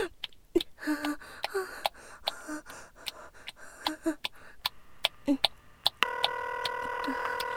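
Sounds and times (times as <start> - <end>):
faint breathing: 0.8 - 5.5
telephone line ringing tone: 6.0 - 7.5.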